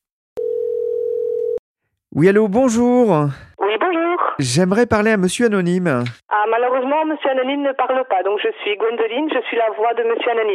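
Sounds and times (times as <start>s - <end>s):
telephone tone of an outgoing call to Brussels: 0.4s - 1.6s
speech: 2.2s - 3.5s, 4.4s - 10.5s.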